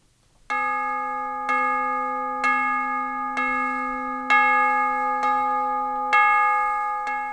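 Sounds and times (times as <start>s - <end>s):
bells ringing: 0.5s - 7.3s.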